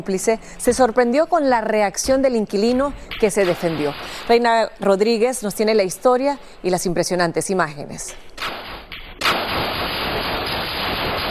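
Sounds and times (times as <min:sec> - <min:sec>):
speech: 0:00.0 - 0:08.4
steady hiss of broadband noise: 0:00.0 - 0:11.2
rapid gunshots recorded by a low-quality surveillance camera: 0:08.4 - 0:11.2.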